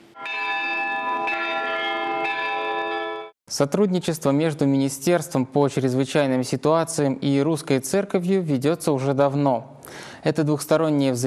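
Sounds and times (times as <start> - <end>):
church bells being struck: 0.1 - 3.4
speech: 3.6 - 11.2.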